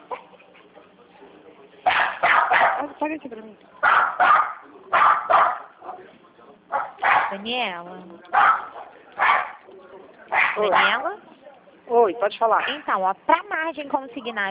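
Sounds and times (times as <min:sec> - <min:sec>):
dog barking excitedly: 0:01.8 - 0:03.0, 0:03.8 - 0:06.1, 0:06.7 - 0:07.5, 0:08.3 - 0:09.6, 0:10.3 - 0:11.2
speech: 0:03.0 - 0:04.3, 0:07.3 - 0:08.7, 0:10.6 - 0:11.2, 0:11.9 - 0:14.4.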